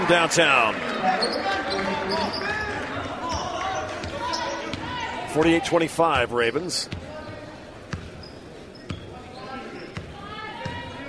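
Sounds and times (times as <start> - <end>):
crowd noise and voices at a high school boys' playoff game: 0.0 - 11.0
speech: 0.1 - 2.4, 5.3 - 7.0
basketball dribbled on the court at a high school boys' playoff game: 3.3 - 5.0, 6.9 - 9.1, 9.9 - 11.0.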